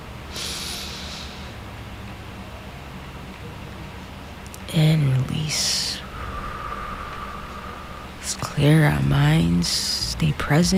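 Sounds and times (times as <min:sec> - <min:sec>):
low hush: 0:00.0 - 0:10.7
deep breath in through the nose during a guided breathing exercise: 0:00.3 - 0:01.6, 0:06.0 - 0:08.5
speech: 0:04.8 - 0:05.8, 0:08.6 - 0:10.7.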